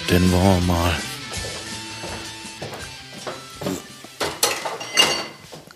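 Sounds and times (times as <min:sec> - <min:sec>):
speech: 0:00.1 - 0:01.1
glass beer bottles clinking in a beer crate as it is handled: 0:04.2 - 0:05.7.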